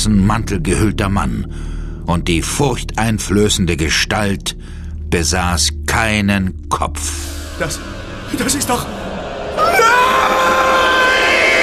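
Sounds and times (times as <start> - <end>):
speech: 0.0 - 9.0
man screaming in a horror audio drama: 9.6 - 11.6.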